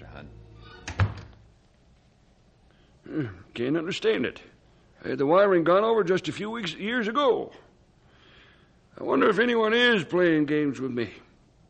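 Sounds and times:
house door shutting: 0:00.6 - 0:01.4
speech: 0:03.2 - 0:07.7, 0:09.0 - 0:11.2.

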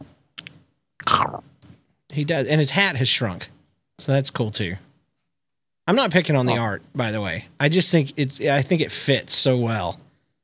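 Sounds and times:
voice imitating munching on a lemon: 0:01.0 - 0:01.4
speech: 0:02.2 - 0:04.9, 0:05.9 - 0:10.0.

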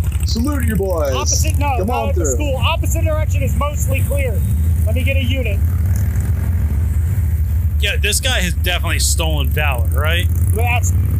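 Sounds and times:
motorcycle engine rumbling on road: 0:00.0 - 0:11.1
speech: 0:00.3 - 0:05.8, 0:07.8 - 0:11.1.

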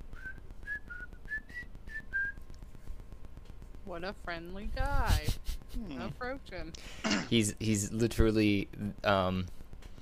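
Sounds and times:
steady low hum: 0:00.0 - 0:10.0
person whistling a happy tune: 0:00.1 - 0:02.4
speech: 0:03.9 - 0:09.6.

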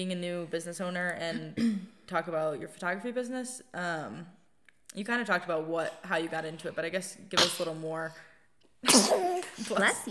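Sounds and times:
speech: 0:00.0 - 0:10.1
person sneezing: 0:07.4 - 0:07.8, 0:08.8 - 0:09.6.

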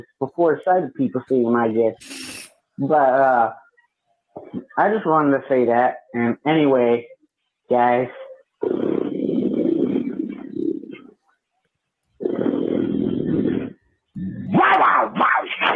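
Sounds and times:
speech: 0:00.0 - 0:03.6, 0:04.4 - 0:07.1, 0:07.7 - 0:08.9
higher snarling roar with rising and falling tones: 0:08.6 - 0:11.1, 0:12.2 - 0:15.7
deep rumbling animal growl: 0:08.6 - 0:11.2, 0:12.2 - 0:14.6.

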